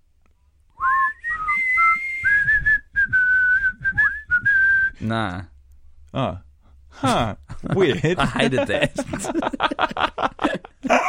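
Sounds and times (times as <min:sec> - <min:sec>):
faint low rumble: 0:00.0 - 0:10.9
clear whistled song melody: 0:00.8 - 0:05.0
speech: 0:05.0 - 0:05.5, 0:06.1 - 0:10.6
laughter: 0:07.0 - 0:11.0.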